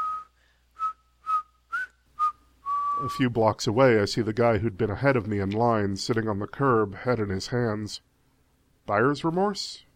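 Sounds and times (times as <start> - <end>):
person whistling a jaunty tune while walking down a street: 0.0 - 3.2
speech: 3.0 - 8.1, 8.9 - 9.9.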